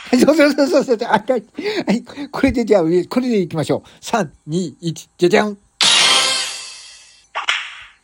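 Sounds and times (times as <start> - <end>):
speech: 0.1 - 5.6
whip crack: 5.8 - 7.9
whip swishing through the air: 7.4 - 7.9.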